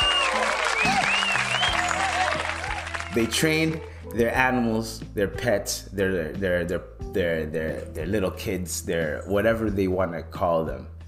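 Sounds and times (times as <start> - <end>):
applause from a group: 0.0 - 4.0
speech: 3.2 - 11.0.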